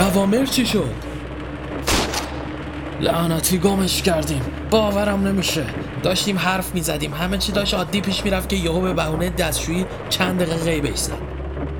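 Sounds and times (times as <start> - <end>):
low steady hum: 0.0 - 11.7
speech: 0.2 - 1.1, 3.0 - 11.3
gunshots fired from a gun: 1.8 - 2.6.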